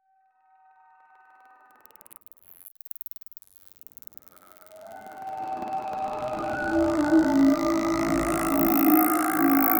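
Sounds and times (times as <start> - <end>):
psychedelic ambient transition effect: 4.2 - 9.7.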